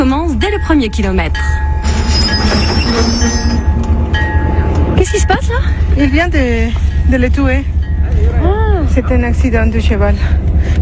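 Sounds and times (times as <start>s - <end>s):
passenger train rolling rumble: 0.0s - 10.7s
speech: 0.6s - 3.8s, 5.0s - 10.7s
passenger train wheels squealing metallically: 1.8s - 4.8s.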